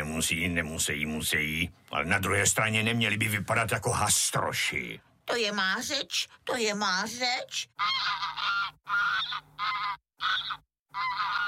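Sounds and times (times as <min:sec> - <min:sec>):
speech: 0:00.2 - 0:11.4
goose honking: 0:07.8 - 0:11.4.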